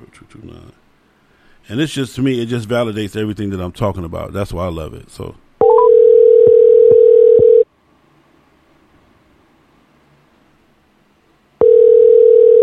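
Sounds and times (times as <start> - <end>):
speech: 0.2 - 0.8, 1.6 - 5.4
telephone ringback tone: 5.6 - 7.6, 11.6 - 12.6.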